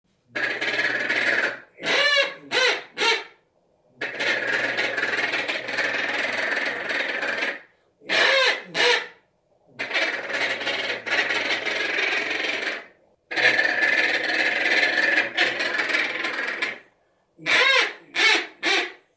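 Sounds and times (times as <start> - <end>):
northern pintail duck: 0.3 - 3.4, 4.0 - 9.2, 9.8 - 16.8, 17.4 - 19.0.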